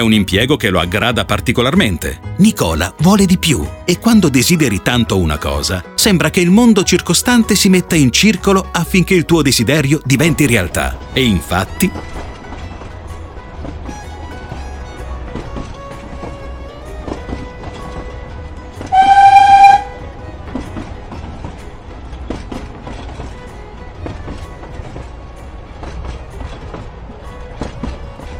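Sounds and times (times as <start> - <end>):
speech: 0.0 - 12.2
train rumbling along rails with wheel clatter: 0.0 - 28.3
train horn blast: 18.8 - 20.2.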